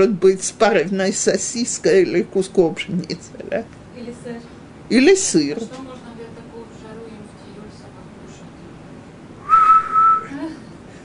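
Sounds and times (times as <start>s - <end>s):
speech: 0.0s - 6.1s
woman whistling a single short note: 9.4s - 10.4s.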